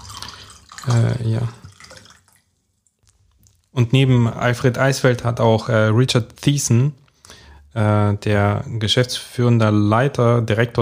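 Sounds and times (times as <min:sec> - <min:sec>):
water pouring into a glass: 0:00.0 - 0:02.9
faint water drips: 0:00.0 - 0:04.4
speech: 0:00.8 - 0:01.6, 0:03.8 - 0:10.8.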